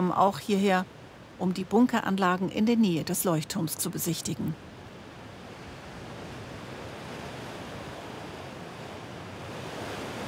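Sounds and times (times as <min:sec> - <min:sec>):
gusting wind at Cape Lindesnes: 0:00.0 - 0:10.2
speech: 0:00.1 - 0:04.7
sea surf roaring at Cape Lindesnes: 0:04.6 - 0:10.2.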